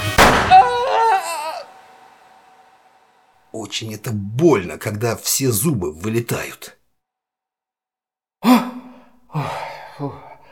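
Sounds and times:
pistol shot fired at point-blank range: 0.0s - 0.8s
speech: 3.6s - 6.8s, 9.4s - 10.2s.

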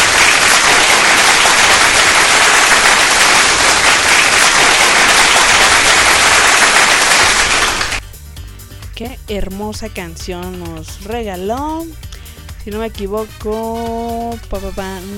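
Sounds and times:
applause after a song: 0.0s - 8.0s
speech: 9.3s - 15.1s.

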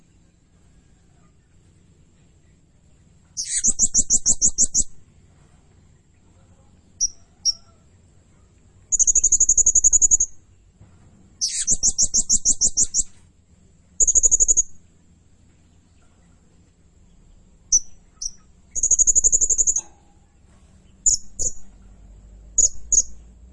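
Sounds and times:
blue-crowned hanging parrot giving buzzy trills and double notes: 3.2s - 5.1s, 6.9s - 8.0s, 8.9s - 10.5s, 11.4s - 13.3s, 13.9s - 15.2s, 15.8s - 23.4s
blue-crowned hanging parrot giving shrill high chirps: 3.4s - 5.0s, 7.0s - 7.8s, 8.9s - 10.4s, 11.4s - 13.2s, 14.0s - 14.8s, 17.7s - 20.0s, 21.0s - 21.7s, 22.6s - 23.2s.

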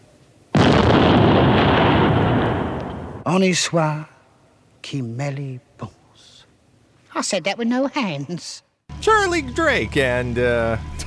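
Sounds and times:
hand grenade explosion: 0.6s - 3.3s
speech: 3.3s - 4.1s, 4.8s - 6.3s, 7.2s - 10.9s.

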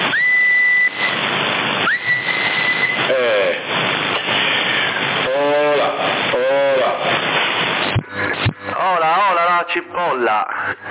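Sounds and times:
whistling carried over a CB radio transmission on the 27 MHz band: 0.1s - 3.4s
bursts of speech over CB radio: 3.0s - 10.8s.

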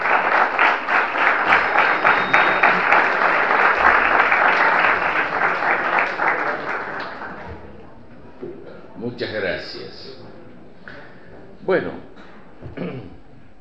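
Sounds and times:
audience applauding a lecturer: 0.0s - 7.6s.

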